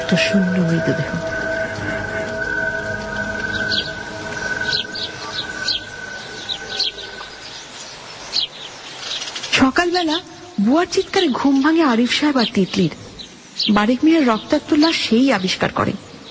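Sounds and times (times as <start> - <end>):
sustained low tone: 0.0 - 7.8
rain falling after a spell of wind: 0.0 - 16.2
speech: 0.1 - 1.4, 9.6 - 13.0, 13.6 - 16.0.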